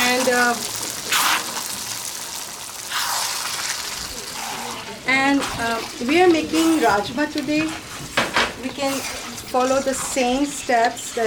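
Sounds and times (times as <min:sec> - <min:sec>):
water poured into a pot of soaked beans: 0:00.0 - 0:04.8
speech: 0:00.3 - 0:00.8, 0:05.2 - 0:07.9, 0:08.8 - 0:11.2.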